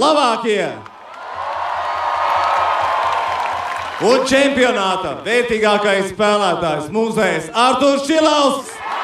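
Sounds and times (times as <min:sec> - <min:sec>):
speech: 0:00.0 - 0:00.9, 0:04.0 - 0:08.7
large crowd roaring and cheering for the Latvian national ice hockey team: 0:00.9 - 0:05.2, 0:08.7 - 0:09.0.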